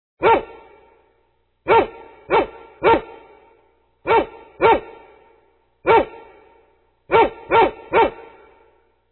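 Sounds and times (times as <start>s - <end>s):
dog: 0.2s - 0.7s, 1.7s - 3.4s, 4.1s - 5.1s, 5.9s - 6.4s, 7.1s - 8.6s.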